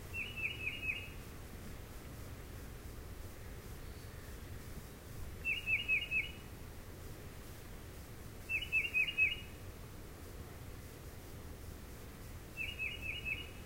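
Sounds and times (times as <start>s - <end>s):
Tufted Titmouse at Indian Springs: 0.1s - 1.2s, 5.4s - 6.5s, 8.5s - 9.5s, 12.6s - 13.6s.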